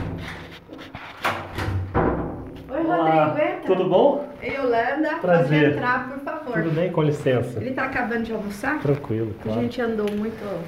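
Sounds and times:
knocking on an apartment door: 0:01.5 - 0:02.5
speech: 0:03.0 - 0:10.6.

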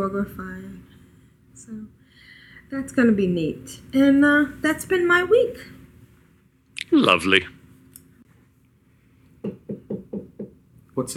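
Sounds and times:
speech: 0:00.0 - 0:00.9, 0:01.6 - 0:05.8, 0:06.9 - 0:07.6, 0:11.0 - 0:11.1
knocking on a door: 0:09.4 - 0:10.6.

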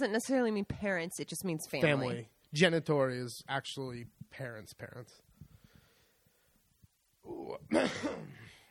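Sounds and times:
speech: 0:00.0 - 0:05.3, 0:07.3 - 0:08.5
cough into the microphone: 0:07.7 - 0:08.7.

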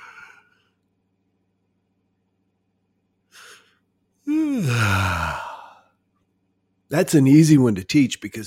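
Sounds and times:
person yawning with a voiced groan: 0:00.0 - 0:00.7, 0:03.4 - 0:05.9
speech: 0:06.9 - 0:08.4.

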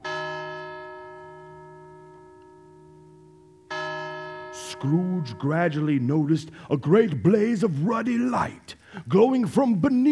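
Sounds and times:
clock bell striking the hour: 0:00.0 - 0:06.2
speech: 0:04.8 - 0:10.0.

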